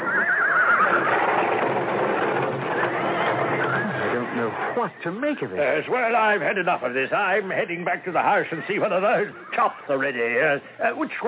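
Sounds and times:
horse whinnying: 0.0s - 4.8s
restless sweating shivering horses shuffling: 0.0s - 10.6s
speech: 4.8s - 11.2s.

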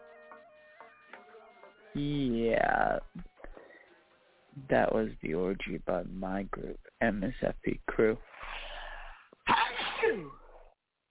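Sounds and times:
speech: 2.0s - 3.3s, 4.6s - 8.3s, 9.5s - 10.4s
single loud sneeze: 9.4s - 10.6s.

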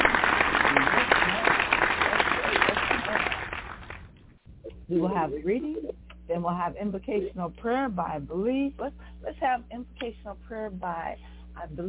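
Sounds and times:
church audience applauding to welcome the pulpit ministers: 0.0s - 4.1s
speech: 4.9s - 11.8s.

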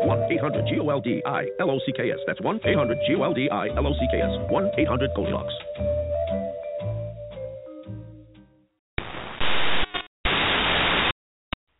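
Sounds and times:
music: 0.0s - 8.8s
speech: 0.3s - 6.0s
harsh radio static: 9.0s - 11.2s.

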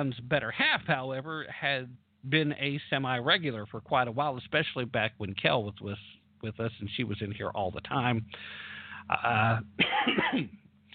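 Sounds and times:
low steady hum: 0.0s - 10.9s
speech: 0.0s - 10.9s
person coughing: 9.4s - 10.6s.

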